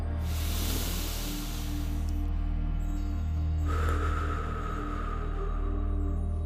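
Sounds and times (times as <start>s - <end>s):
person breathing in through the nose and out through the mouth: 0.2s - 2.3s, 3.6s - 6.4s.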